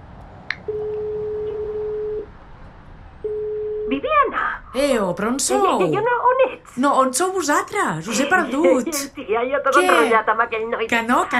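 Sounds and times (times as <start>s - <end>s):
ringback tone of an outgoing telephone call: 0.7s - 2.3s, 3.2s - 3.9s
speech: 4.7s - 11.3s.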